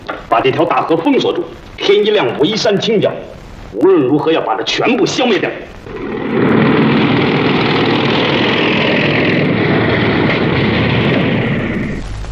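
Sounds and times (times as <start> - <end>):
speech: 0.4 - 6.4
motorcycle engine roaring: 5.9 - 12.3.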